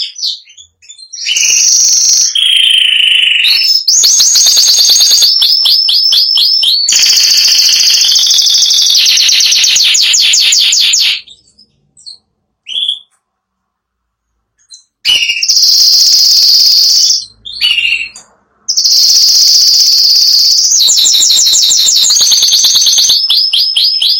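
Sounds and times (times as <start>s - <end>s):
Spanish giboso canary singing buzzy high trills and rolling phrases: 0.0s - 13.2s, 14.6s - 24.1s.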